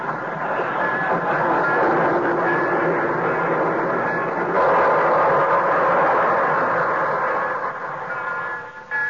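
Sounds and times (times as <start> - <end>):
train pulling into a station: 0.0 - 9.0.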